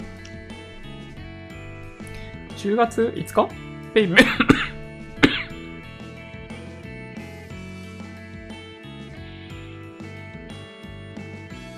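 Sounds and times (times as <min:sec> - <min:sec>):
speech: 0:02.6 - 0:04.6
coughing: 0:04.1 - 0:06.0.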